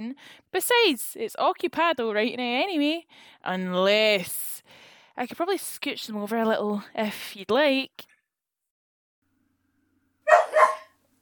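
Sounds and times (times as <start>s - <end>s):
speech: 0.0s - 8.1s
dog barking in a hearse: 10.3s - 11.0s.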